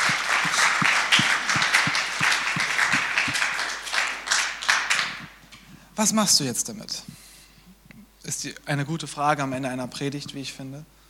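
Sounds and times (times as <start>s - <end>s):
audience applause: 0.0s - 5.4s
speech: 6.0s - 7.1s, 8.4s - 11.0s.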